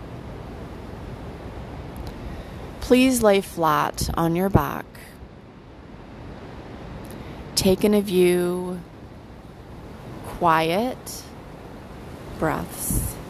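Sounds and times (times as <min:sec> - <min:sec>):
light wind: 0:00.0 - 0:13.2
ocean surf: 0:00.0 - 0:13.2
speech: 0:02.9 - 0:05.1, 0:07.6 - 0:08.9, 0:10.4 - 0:11.3, 0:12.4 - 0:13.2.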